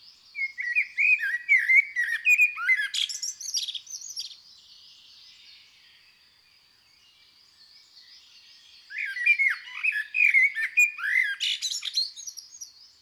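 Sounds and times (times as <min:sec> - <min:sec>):
faint birdsong: 0:00.0 - 0:13.0
common blackbird singing slow mellow fluted phrases: 0:00.4 - 0:04.4, 0:08.5 - 0:12.9.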